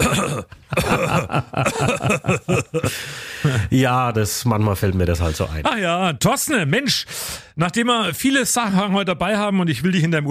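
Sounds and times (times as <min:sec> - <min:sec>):
person clearing throat: 0:00.0 - 0:02.9
laughter: 0:00.0 - 0:03.7
speech: 0:00.8 - 0:10.2.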